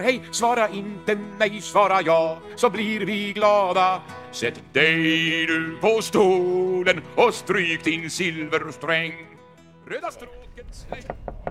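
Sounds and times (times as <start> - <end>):
speech: 0.0 - 9.3, 9.9 - 11.3
knocking on the door of an old restaurant: 10.8 - 11.5.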